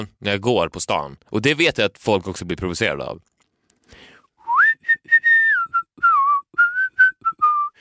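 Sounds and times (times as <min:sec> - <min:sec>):
speech: 0:00.0 - 0:03.3
person whistling a melody: 0:04.4 - 0:07.7.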